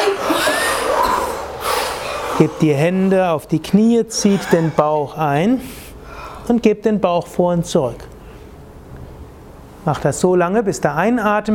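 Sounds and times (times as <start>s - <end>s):
laughter: 0.0s - 3.0s, 4.2s - 5.2s
forceful breathy exhale through the mouth during a yoga breathing exercise: 0.3s - 2.6s
speech: 2.4s - 5.8s, 6.4s - 8.1s, 9.8s - 11.5s.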